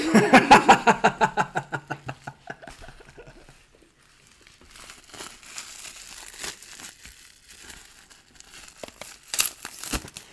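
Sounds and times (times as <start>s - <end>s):
laughter: 0.0s - 3.6s
rustling and crinkling: 0.8s - 10.3s
crinkly vinyl record package wrapper being pulled open: 2.1s - 10.3s.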